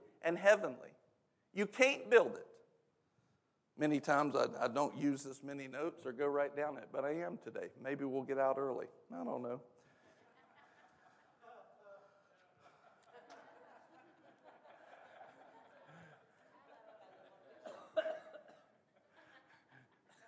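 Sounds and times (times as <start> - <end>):
speech: 0.2 - 2.6, 3.8 - 9.7
people chuckling in a room: 10.1 - 11.9, 12.6 - 20.2
loud forceful cough: 17.6 - 18.8.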